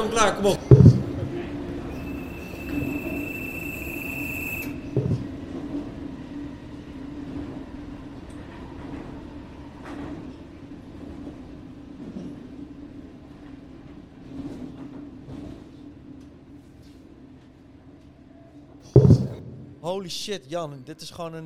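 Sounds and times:
sleeper train rolling on rails: 0:00.0 - 0:21.3
speech: 0:00.1 - 0:00.9, 0:19.9 - 0:21.4
faint knocks: 0:00.6 - 0:01.4, 0:04.9 - 0:05.3, 0:18.9 - 0:19.6
high squeal of a train: 0:01.8 - 0:05.3.

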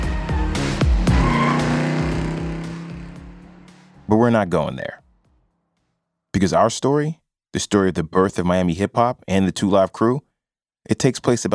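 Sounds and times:
convertible car engine revving: 0:00.1 - 0:04.8
speech: 0:04.1 - 0:05.0, 0:06.4 - 0:11.5.

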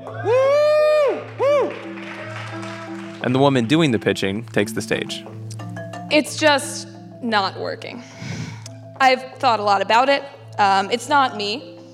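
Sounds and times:
audience cheering after prompt by organizer: 0:00.0 - 0:03.9
speech: 0:03.2 - 0:05.4, 0:06.1 - 0:08.3, 0:09.0 - 0:11.8.

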